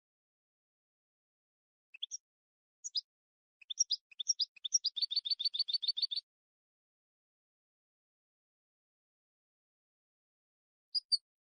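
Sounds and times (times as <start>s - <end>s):
European goldfinch song: 1.9s - 2.2s, 2.8s - 6.2s, 11.0s - 11.4s.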